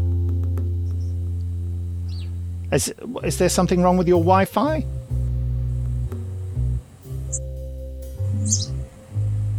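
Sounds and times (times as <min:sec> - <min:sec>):
loud steady low electronic hum: 0:00.0 - 0:09.5
brief high bird chirps: 0:02.1 - 0:02.4, 0:07.1 - 0:09.5
speech: 0:02.7 - 0:05.0.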